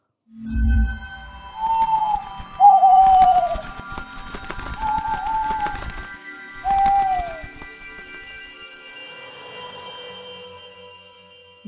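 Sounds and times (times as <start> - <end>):
soft fluttering and rustling: 0.6 - 8.6
birds cooing and chirping in an aviary: 1.5 - 8.2.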